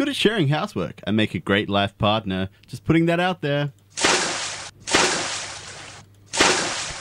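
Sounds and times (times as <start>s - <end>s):
speech: 0.0s - 3.8s
water splashing from someone swimming in a pool: 4.0s - 6.9s.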